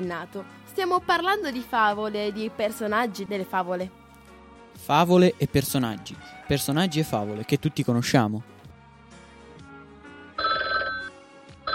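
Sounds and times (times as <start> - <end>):
speech: 0.0 - 4.0, 4.8 - 8.6
electronic telephone ringing for incoming call: 10.4 - 11.7.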